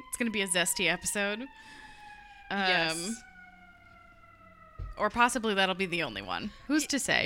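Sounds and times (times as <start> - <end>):
emergency vehicle siren blast outside: 0.0 - 7.2
speech: 0.2 - 1.8, 2.5 - 3.3, 5.0 - 7.2
steady hum: 2.6 - 3.2.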